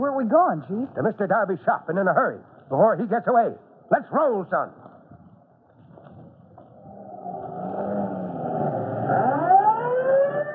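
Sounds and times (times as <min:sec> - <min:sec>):
speech: 0:00.0 - 0:04.9
fire chief's car engine revving and accelerating: 0:06.8 - 0:10.0
siren wailing: 0:06.8 - 0:10.5.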